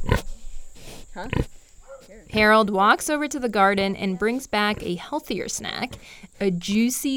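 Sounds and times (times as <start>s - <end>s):
mulefoot pig snorting: 0.0s - 2.5s
400-pound mulefoot pig on a farm grunting while offered a cookie: 1.2s - 2.5s
speech: 1.2s - 7.1s.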